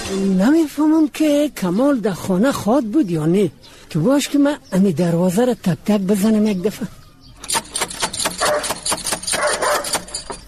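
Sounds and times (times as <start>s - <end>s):
speech: 0.1s - 7.0s
dog barking: 8.4s - 10.4s.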